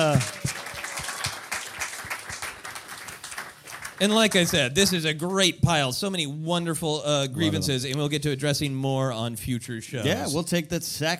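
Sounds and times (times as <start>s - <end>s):
speech: 0.0s - 0.6s, 4.0s - 11.1s
audience applause: 0.0s - 4.8s.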